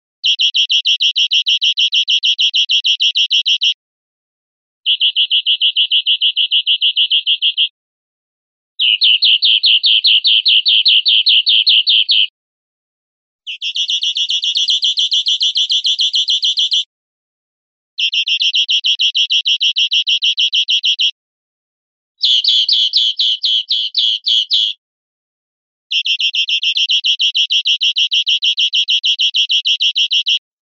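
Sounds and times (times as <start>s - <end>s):
greenfinch singing angry corrido songs: 0.2s - 3.8s, 4.8s - 7.8s, 8.8s - 12.3s, 13.4s - 16.9s, 18.0s - 21.2s, 22.2s - 24.8s, 25.9s - 30.4s.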